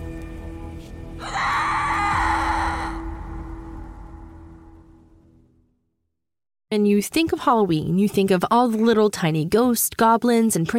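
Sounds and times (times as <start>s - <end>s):
loud piercing blood-curdling scream: 1.2s - 4.9s
low rumbling background: 2.0s - 5.6s
speech: 6.7s - 10.7s.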